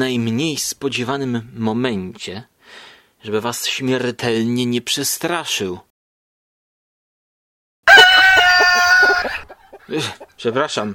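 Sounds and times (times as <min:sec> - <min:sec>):
speech: 0:00.0 - 0:05.9, 0:09.9 - 0:10.9
chicken squawking call: 0:07.9 - 0:10.8.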